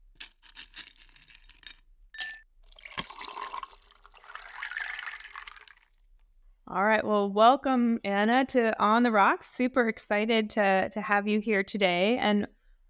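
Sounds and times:
glass clinking: 0:02.1 - 0:05.6
drink pouring into a glass: 0:02.6 - 0:06.2
speech: 0:06.7 - 0:12.8.

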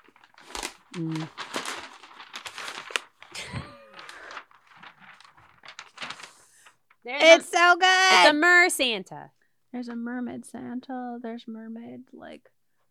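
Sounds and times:
wrapping paper crinkling and rustling: 0:00.0 - 0:07.4
speech: 0:00.9 - 0:01.5, 0:07.1 - 0:12.6.

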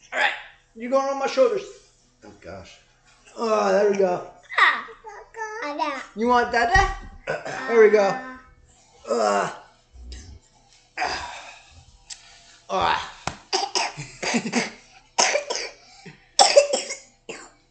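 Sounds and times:
speech: 0:00.2 - 0:01.8, 0:02.4 - 0:04.9, 0:05.7 - 0:08.3, 0:09.1 - 0:09.6, 0:12.7 - 0:13.1, 0:14.0 - 0:14.8
young child coughing: 0:07.3 - 0:08.1, 0:13.5 - 0:14.0, 0:15.2 - 0:15.8, 0:16.4 - 0:17.5.

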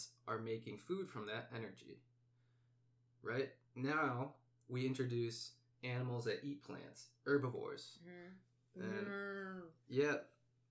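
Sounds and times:
speech: 0:00.0 - 0:02.1, 0:03.2 - 0:10.4
person imitating a cow mooing: 0:08.8 - 0:09.7.

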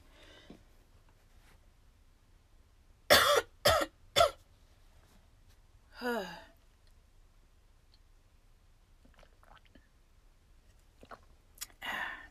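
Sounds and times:
person coughing: 0:03.1 - 0:04.4.

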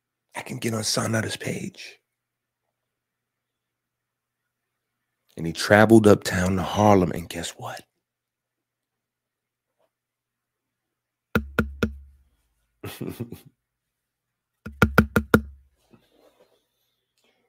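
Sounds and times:
speech: 0:00.5 - 0:02.0, 0:05.4 - 0:07.9, 0:12.8 - 0:13.6
knocking on a door: 0:11.4 - 0:12.1, 0:14.7 - 0:15.6
short laugh: 0:12.8 - 0:13.5.

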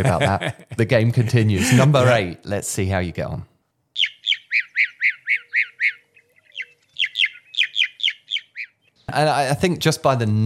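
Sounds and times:
laughter: 0:00.0 - 0:02.4
speech: 0:00.0 - 0:03.5, 0:09.1 - 0:10.4
mockingbird calling in harsh squawky chirps: 0:04.0 - 0:09.1.

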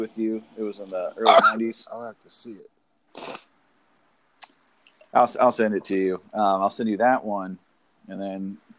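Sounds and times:
speech: 0:00.0 - 0:03.4, 0:05.1 - 0:08.7
short breathy sneeze: 0:01.2 - 0:02.1, 0:03.2 - 0:03.4.

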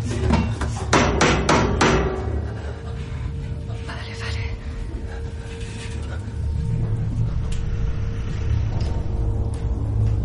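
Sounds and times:
low rumbling hum: 0:00.0 - 0:10.2
hammer striking the metal wall of a submarine escape hatch chamber: 0:00.3 - 0:02.6.

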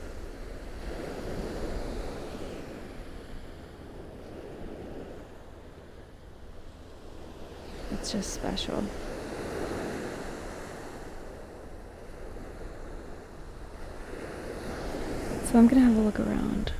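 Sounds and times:
low wind rumble on the microphone: 0:00.0 - 0:16.7
ocean surf washing onto a beach: 0:00.0 - 0:16.7
speech: 0:08.1 - 0:09.1, 0:15.5 - 0:16.7.

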